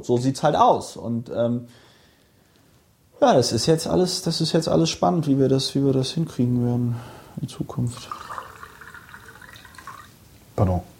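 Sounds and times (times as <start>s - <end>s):
speech: 0.0s - 1.9s, 3.2s - 8.4s, 10.6s - 10.9s
water pouring into a glass: 7.7s - 10.2s.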